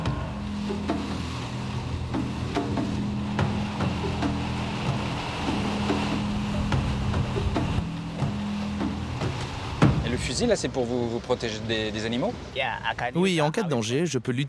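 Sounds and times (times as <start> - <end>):
steady low motor drone: 0.0 - 10.1
broad washing hiss of water: 0.0 - 12.6
wind: 0.0 - 14.4
speech: 10.4 - 14.4.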